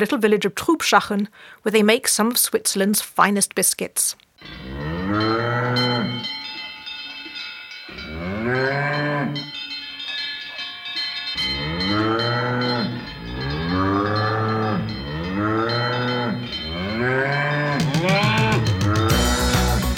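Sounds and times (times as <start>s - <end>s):
speech: 0.0s - 6.0s
cows mooing: 4.4s - 6.3s, 7.9s - 9.5s, 11.4s - 19.8s.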